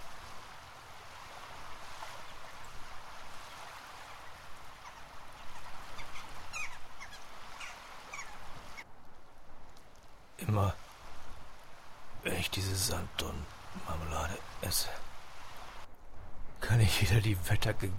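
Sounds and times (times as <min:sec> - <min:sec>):
steady rushing wind: 0:00.0 - 0:17.9
faint bird calls: 0:03.7 - 0:08.9
speech: 0:10.5 - 0:10.8, 0:12.3 - 0:15.1, 0:16.6 - 0:17.9.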